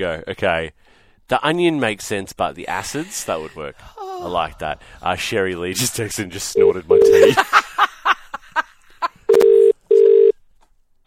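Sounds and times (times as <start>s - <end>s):
speech: 0.0s - 7.9s
laughter: 2.8s - 4.3s, 6.8s - 9.3s
telephone call being dialed with long steady ringing tones: 6.6s - 7.3s, 9.3s - 10.3s.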